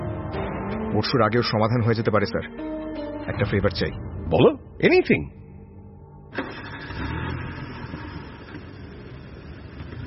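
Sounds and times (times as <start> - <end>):
speech: 0.9 - 5.4
government car engine starting and idling: 6.3 - 10.0.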